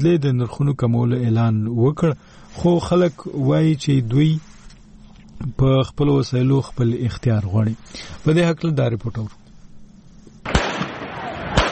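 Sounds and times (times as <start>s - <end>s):
speech: 0.0s - 4.5s, 5.4s - 9.4s
gunfire by security forces during street protests in Pakistan-administered Jammu and Kashmir: 10.4s - 11.6s.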